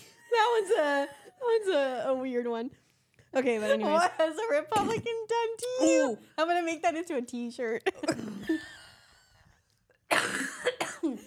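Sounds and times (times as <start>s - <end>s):
speech: 0.6s - 8.8s
person coughing up phlegm: 4.8s - 5.0s, 10.1s - 11.2s.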